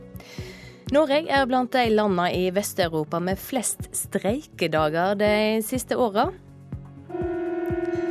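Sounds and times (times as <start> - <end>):
speech: 0.9 - 6.4
national emergency warning system alert signal via FM network: 7.1 - 8.1.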